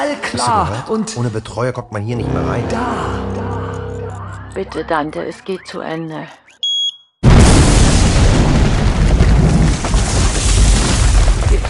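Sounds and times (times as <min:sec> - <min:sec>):
speech: 0:00.0 - 0:03.4, 0:04.6 - 0:06.4
brief electronic beep: 0:02.2 - 0:07.2
very loud explosion in a city centre: 0:07.2 - 0:11.6.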